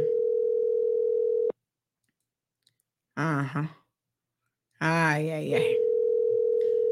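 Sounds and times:
telephone ringing tone from an outgoing call: 0.0 - 1.5, 5.5 - 6.9
speech: 3.2 - 3.8, 4.8 - 5.8.

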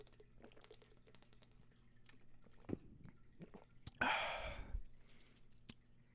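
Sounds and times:
person drinking water with soft gulps: 0.0 - 5.8
small wet mouth clicks: 3.4 - 4.0
loud breathy exhale of relief: 4.0 - 4.8.

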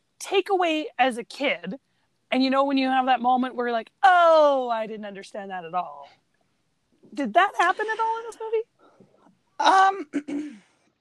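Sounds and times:
speech: 0.3 - 6.2, 7.1 - 8.7, 9.6 - 10.7
person clearing throat: 9.6 - 10.8.

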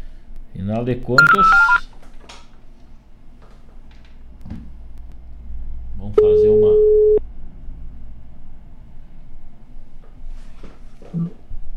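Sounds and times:
low steady hum: 0.0 - 11.7
speech: 0.6 - 1.8
telephone keypad tone beep: 1.2 - 1.8, 6.2 - 7.2.

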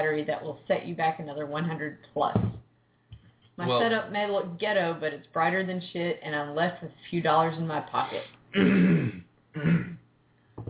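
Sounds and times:
speech: 0.0 - 2.6, 3.6 - 9.9
person clearing throat: 8.6 - 10.0.

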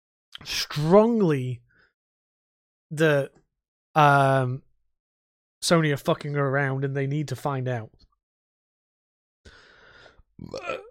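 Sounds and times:
speech: 0.3 - 1.6, 2.9 - 3.4, 4.0 - 4.6, 5.6 - 8.0, 10.4 - 10.9
brief throaty vocal sound: 10.4 - 10.9
rasping burp: 10.4 - 10.9.

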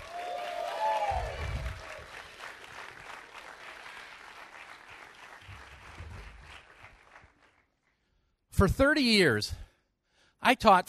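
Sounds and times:
cheering: 0.0 - 4.6
crowd applauding: 0.0 - 8.0
speech: 8.6 - 9.7, 10.5 - 10.8.

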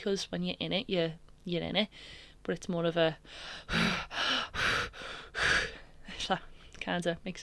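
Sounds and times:
speech: 0.0 - 4.8, 6.3 - 7.4
person imitating erratic holotropic breathwork breathing: 1.9 - 2.4, 3.2 - 6.8.

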